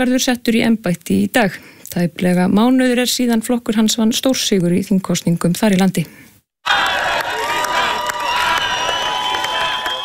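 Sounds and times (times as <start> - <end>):
speech: 0.0 - 6.9
large crowd cheering and shouting outside the Hungarian parliament building: 6.6 - 10.0.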